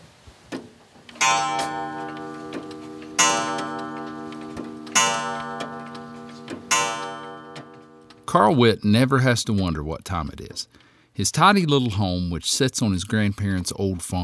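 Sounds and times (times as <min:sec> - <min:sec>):
several old clocks ticking in a farm home in West Virginia: 0:01.1 - 0:08.3
speech: 0:08.3 - 0:14.2.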